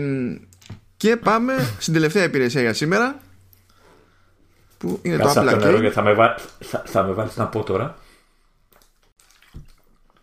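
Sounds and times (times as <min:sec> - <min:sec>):
speech: 0:00.0 - 0:03.3, 0:04.8 - 0:08.0
water being poured for drinking: 0:08.8 - 0:10.2.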